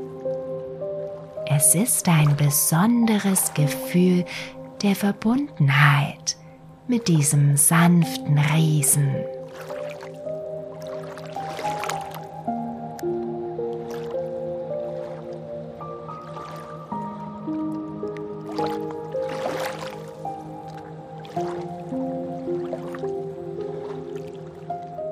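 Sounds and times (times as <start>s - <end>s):
river water lapping and dripping: 0.0s - 6.8s, 8.4s - 25.1s
sustained musical tones: 0.0s - 25.1s
speech: 1.5s - 9.7s.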